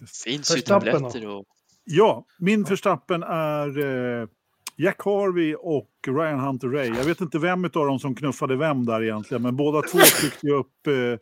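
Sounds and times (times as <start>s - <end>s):
speech: 0.0s - 11.2s
man sneezing: 9.8s - 10.4s.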